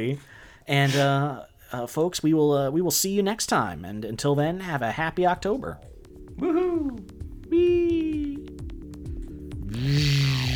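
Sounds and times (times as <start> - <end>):
speech: 0.0 - 7.8
chainsaw engine running and revving: 9.6 - 10.5.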